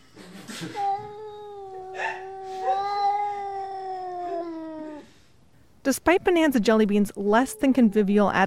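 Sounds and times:
speech: 0:00.6 - 0:01.2, 0:05.9 - 0:08.4
two cats yowling at each other through a screen door: 0:00.7 - 0:05.1, 0:07.3 - 0:08.4.

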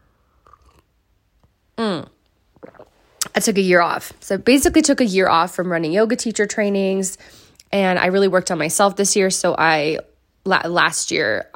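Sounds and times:
quiet swallowing: 0:00.3 - 0:00.9, 0:01.8 - 0:03.4
person slurping a hot drink: 0:00.4 - 0:00.9, 0:01.8 - 0:03.4
speech: 0:03.4 - 0:11.5.

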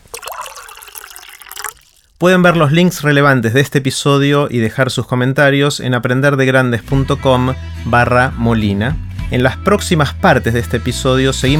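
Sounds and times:
water poured into a glass or cup: 0:00.0 - 0:02.2
speech: 0:02.2 - 0:11.5.

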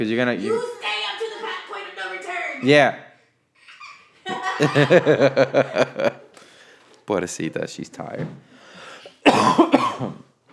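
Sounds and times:
speech: 0:00.0 - 0:00.8, 0:02.6 - 0:03.0, 0:04.6 - 0:06.2, 0:07.1 - 0:08.5
laughter: 0:03.6 - 0:06.4
breath: 0:06.4 - 0:07.0, 0:08.4 - 0:09.2
person coughing: 0:09.0 - 0:10.3.

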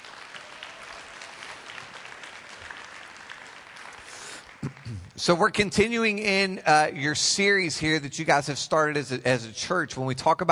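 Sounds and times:
church audience applauding: 0:00.0 - 0:05.4
speech: 0:04.9 - 0:10.4.

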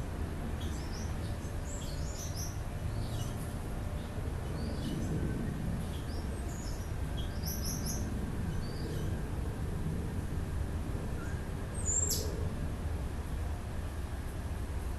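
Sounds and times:
steady low rumble of traffic: 0:00.0 - 0:14.9
several birds chirping and trilling: 0:00.6 - 0:09.2, 0:11.2 - 0:12.4.

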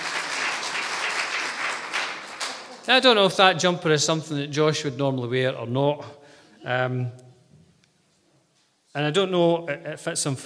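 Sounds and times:
round of applause from many hands: 0:00.0 - 0:03.1
speech: 0:02.9 - 0:07.2, 0:09.0 - 0:10.4.

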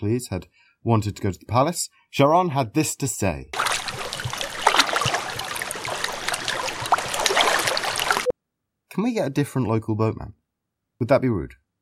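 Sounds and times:
speech: 0:00.0 - 0:03.6, 0:09.0 - 0:10.4, 0:11.0 - 0:11.6
water lapping and sloshing: 0:03.6 - 0:08.3.

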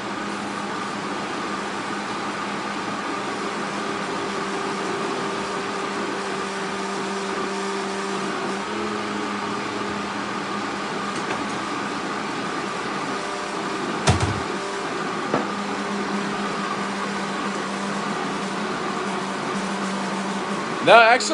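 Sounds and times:
blender running on high speed: 0:00.1 - 0:21.3
speech: 0:20.9 - 0:21.3.

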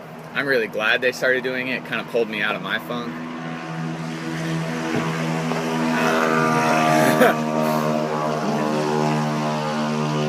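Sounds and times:
speech: 0:00.4 - 0:03.3, 0:07.2 - 0:07.6
two-stroke moped engine with tuned muffler buzzing: 0:03.0 - 0:10.2
laughter: 0:06.0 - 0:09.1.

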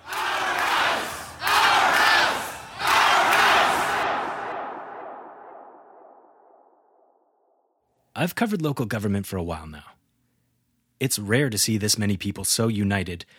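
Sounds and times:
large crowd of protesters shouting together: 0:00.0 - 0:05.5
speech: 0:08.2 - 0:10.0, 0:11.0 - 0:13.3.

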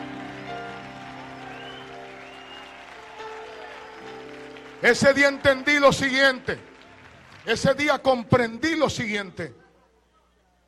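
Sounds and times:
audience applause: 0:00.0 - 0:08.0
speech: 0:04.8 - 0:06.7, 0:07.4 - 0:09.6.

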